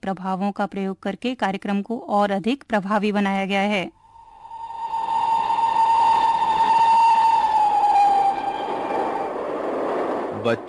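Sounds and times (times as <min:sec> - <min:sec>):
speech: 0:00.0 - 0:04.0, 0:10.4 - 0:10.6
train horn blast: 0:04.5 - 0:09.4
rumble of train wheels rolling: 0:05.0 - 0:10.6.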